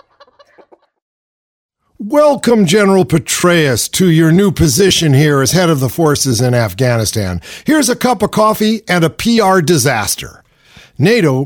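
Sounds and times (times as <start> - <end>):
chickens clucking: 0.0 - 1.0
speech: 2.0 - 10.4, 11.0 - 11.4.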